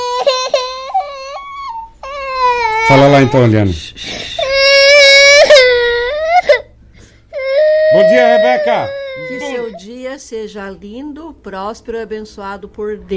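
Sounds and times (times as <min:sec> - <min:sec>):
baby whimpering and crying: 0:00.0 - 0:03.6, 0:04.3 - 0:06.7, 0:07.3 - 0:09.9
adult speaking: 0:02.8 - 0:04.0, 0:07.9 - 0:09.8
speech: 0:02.9 - 0:04.3, 0:07.9 - 0:13.1.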